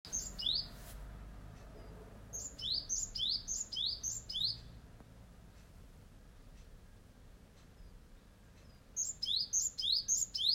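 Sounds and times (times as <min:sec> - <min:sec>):
small bird on a cherry tree singing high sweeping notes: 0:00.1 - 0:00.8, 0:02.3 - 0:04.8, 0:08.7 - 0:10.5.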